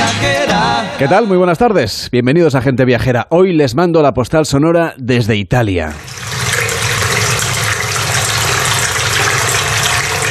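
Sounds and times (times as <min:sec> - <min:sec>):
speech: 0:00.2 - 0:06.2
water surging and splashing against rock walls in a cave: 0:06.0 - 0:10.3.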